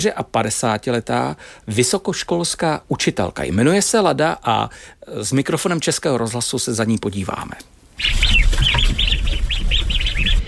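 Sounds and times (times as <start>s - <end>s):
speech: 0.0s - 9.0s
ducks calling after being fed at a farmstead in the Šumava region: 8.0s - 10.4s.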